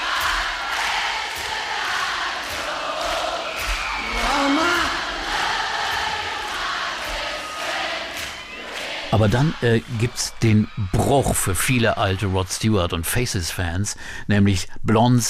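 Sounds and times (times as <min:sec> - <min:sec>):
large live concert audience singing along loudly: 0:00.0 - 0:10.6
speech: 0:09.2 - 0:15.2.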